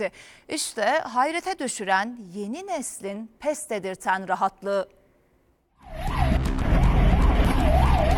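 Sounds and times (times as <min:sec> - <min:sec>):
speech: 0:00.0 - 0:05.0
ambulance siren wailing in India: 0:05.8 - 0:08.1.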